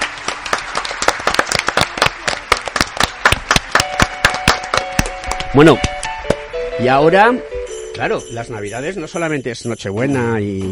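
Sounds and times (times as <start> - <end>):
small audience applauding: 0.0 - 6.4
speech: 5.5 - 6.0, 6.8 - 10.7.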